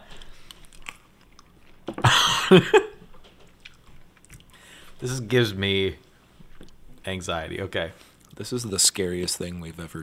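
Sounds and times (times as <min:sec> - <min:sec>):
chewing Skittles candies: 0:00.1 - 0:01.9, 0:03.5 - 0:04.6
speech: 0:02.5 - 0:02.8, 0:05.0 - 0:06.0, 0:07.1 - 0:10.0.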